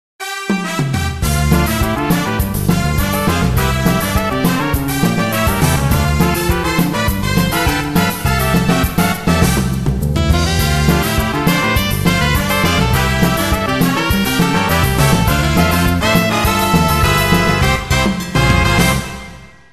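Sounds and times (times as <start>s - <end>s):
Latino samba music: 0.2s - 19.7s.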